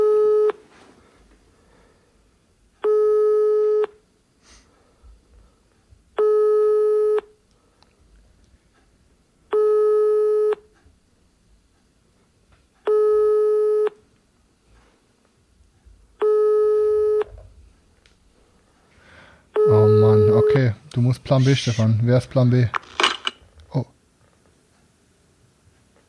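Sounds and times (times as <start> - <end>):
telephone busy tone over a speakerphone: 0.0 - 0.6, 2.8 - 3.9, 6.2 - 7.3, 9.5 - 10.6, 12.9 - 14.0, 16.2 - 17.3, 19.6 - 20.7
faint room noise: 0.0 - 26.0
speech: 21.1 - 23.0, 23.7 - 23.9.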